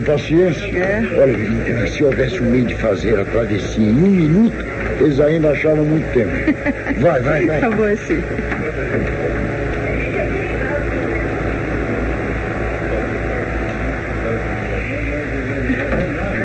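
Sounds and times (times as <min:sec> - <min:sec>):
speech: 0:00.0 - 0:09.6
motorboat engine droning, arriving at dock: 0:00.0 - 0:16.4
laughter: 0:06.0 - 0:09.2, 0:15.4 - 0:16.4.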